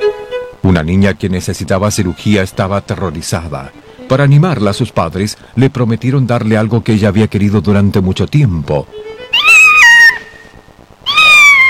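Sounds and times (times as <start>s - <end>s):
speech: 0.6s - 9.2s
kitten meowing high-pitched: 9.2s - 11.6s.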